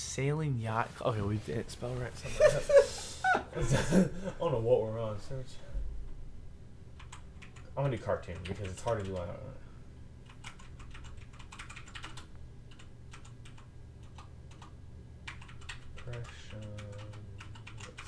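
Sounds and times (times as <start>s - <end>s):
low hum: 0.0s - 18.0s
speech: 0.2s - 5.7s, 7.8s - 9.6s, 16.1s - 16.8s
laughter: 2.2s - 4.4s
typing on a clicky computer keyboard: 7.0s - 7.7s, 8.3s - 9.3s, 10.2s - 18.0s.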